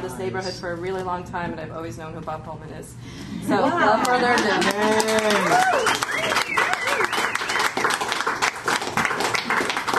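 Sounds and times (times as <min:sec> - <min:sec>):
speech: 0:00.1 - 0:06.0
audience applause at a live reading in a bookshop: 0:04.3 - 0:09.9
cheers and whoops: 0:05.0 - 0:07.8.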